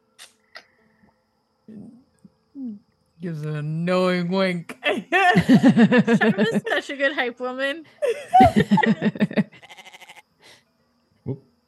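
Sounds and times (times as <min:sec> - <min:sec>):
speech: 0:02.6 - 0:09.4, 0:11.3 - 0:11.5
laughter: 0:05.1 - 0:07.0, 0:08.0 - 0:09.6
goat bleating: 0:09.6 - 0:10.2.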